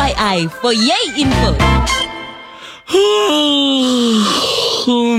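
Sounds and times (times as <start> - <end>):
speech: 0.2 - 2.2, 2.9 - 5.1
tired person yawning: 2.5 - 5.1.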